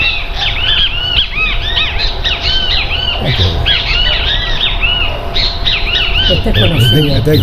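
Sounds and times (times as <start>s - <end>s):
great kiskadee calling: 0.0s - 7.4s
low rumbling background: 0.0s - 7.4s
speech: 6.5s - 7.4s.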